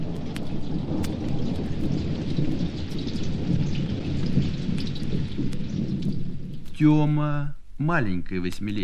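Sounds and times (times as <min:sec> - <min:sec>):
deep continuous thunder rumble: 0:00.0 - 0:08.8
heavy thunderstorm downpour: 0:00.0 - 0:08.8
speech: 0:06.8 - 0:08.8.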